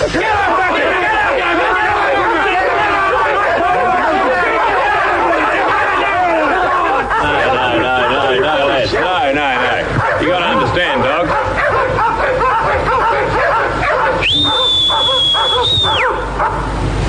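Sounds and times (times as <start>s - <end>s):
several dogs barking and yipping: 0.1s - 16.9s
sustained high-pitched whistle: 14.2s - 16.2s.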